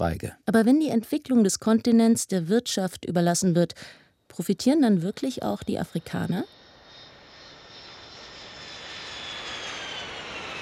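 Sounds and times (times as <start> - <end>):
speech: 0.0 - 6.6
airplane in flight engine drone: 5.1 - 10.6.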